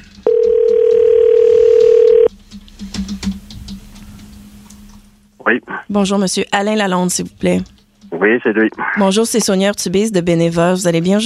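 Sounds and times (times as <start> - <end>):
telephone dial tone: 0.2 - 2.3
speech: 5.5 - 11.2.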